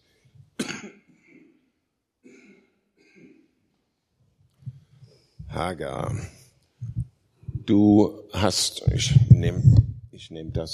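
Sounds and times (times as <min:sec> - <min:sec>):
person coughing harshly: 0:00.6 - 0:01.6, 0:02.2 - 0:03.5
speech: 0:05.5 - 0:06.4, 0:07.7 - 0:10.7.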